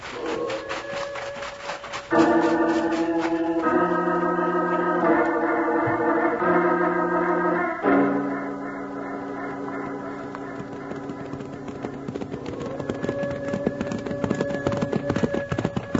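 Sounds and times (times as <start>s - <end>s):
horses galloping with riders on a mountain: 0.0s - 4.5s, 9.0s - 15.9s
quick steady drumming of hoofbeats: 0.0s - 6.3s, 7.8s - 15.9s
sustained tonal hum: 2.1s - 12.1s.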